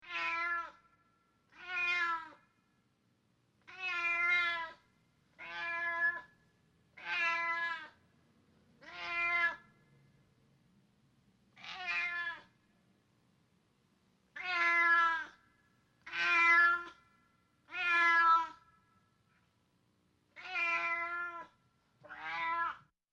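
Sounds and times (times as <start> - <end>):
cat meowing: 0.0 - 0.8, 1.5 - 2.4, 3.7 - 4.8, 5.4 - 6.3, 7.0 - 8.0, 8.8 - 9.7, 11.6 - 12.6, 14.3 - 15.4, 16.0 - 17.0, 17.6 - 18.7, 20.4 - 22.9.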